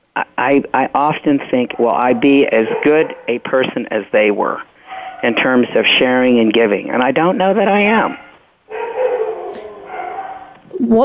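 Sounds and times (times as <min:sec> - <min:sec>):
speech: 0:00.2 - 0:08.2
dogs barking: 0:01.6 - 0:04.0, 0:04.8 - 0:05.6, 0:08.0 - 0:10.8.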